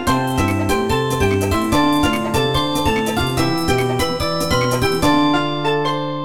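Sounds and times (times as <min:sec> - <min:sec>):
Motorola Razr V3 ringtone: 0:00.1 - 0:06.2.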